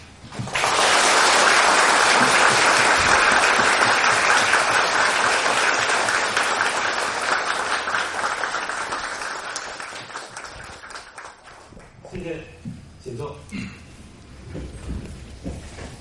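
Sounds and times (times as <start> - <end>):
large crowd applause welcoming a speaker: 0.3 - 11.9.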